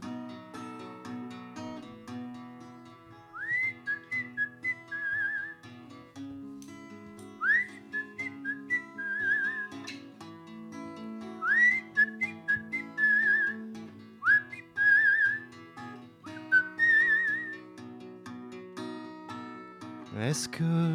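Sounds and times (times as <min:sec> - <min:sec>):
steady instrumental backing music: 0:00.0 - 0:20.9
person whistling a melody: 0:03.4 - 0:05.6, 0:07.4 - 0:09.9, 0:11.4 - 0:13.6, 0:14.2 - 0:15.5, 0:16.3 - 0:17.6
speech: 0:20.2 - 0:20.9.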